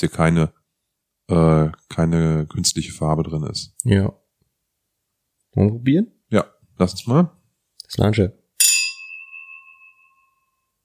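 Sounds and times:
speech: 0:00.0 - 0:00.6, 0:01.3 - 0:04.2, 0:05.5 - 0:08.4
two drinking glasses clinking: 0:08.6 - 0:10.6.

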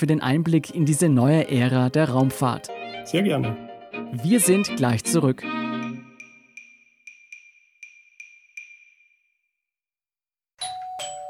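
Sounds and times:
speech: 0:00.0 - 0:05.6
doorbell chiming as a food delivery arrives: 0:10.6 - 0:11.2.

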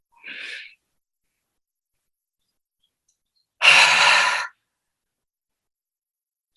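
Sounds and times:
person exhaling open-mouthed, breathy like fogging a mirror: 0:00.2 - 0:00.8, 0:03.6 - 0:04.6.

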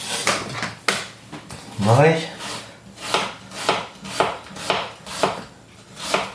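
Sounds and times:
speech: 0:01.8 - 0:02.4
knife chopping onions for Königsberger Klopse: 0:02.4 - 0:06.3.

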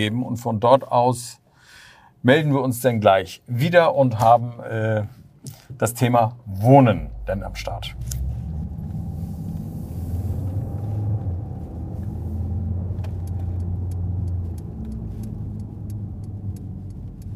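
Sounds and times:
speech: 0:00.0 - 0:01.4, 0:02.2 - 0:08.2
car engine and road rumble heard from inside, driving into a residential street: 0:05.2 - 0:17.3.

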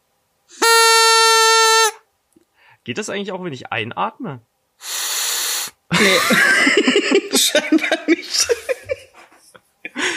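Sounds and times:
toy horn blast: 0:00.5 - 0:02.0, 0:04.8 - 0:05.8
speech: 0:02.9 - 0:04.9, 0:06.0 - 0:06.8, 0:07.4 - 0:08.5
laughter: 0:05.9 - 0:10.1.

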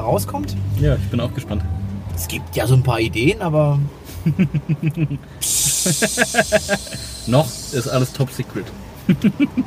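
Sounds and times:
speech: 0:00.0 - 0:09.6
rhythmic voiced talk or laughter: 0:04.1 - 0:07.4
person making a sustained psst shushing hiss: 0:05.4 - 0:08.2.

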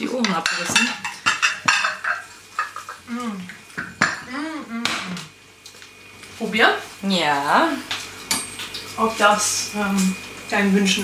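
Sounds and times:
speech: 0:00.0 - 0:01.1, 0:06.4 - 0:07.9, 0:09.0 - 0:11.0
deep plates and cutlery clattering in an apartment: 0:00.1 - 0:03.1, 0:03.7 - 0:04.3.

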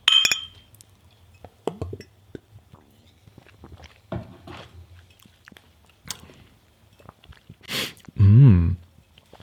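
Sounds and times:
glasses clinking in a toast: 0:00.0 - 0:00.7
quiet chewing: 0:02.3 - 0:08.2, 0:08.8 - 0:09.4.

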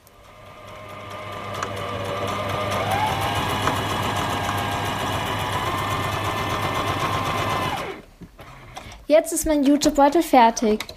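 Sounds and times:
sewing machine stitching straps onto a large fabric bag: 0:00.2 - 0:09.0
speech: 0:09.1 - 0:10.9.

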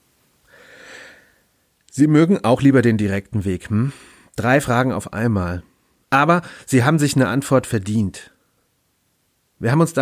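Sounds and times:
long deep inhalation through the nose: 0:00.4 - 0:01.6
speech: 0:02.0 - 0:08.3, 0:09.6 - 0:10.0.

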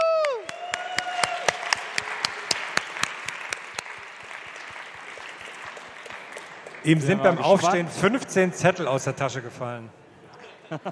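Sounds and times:
audience applause: 0:00.0 - 0:07.7
speech: 0:06.8 - 0:10.0, 0:10.7 - 0:10.9.

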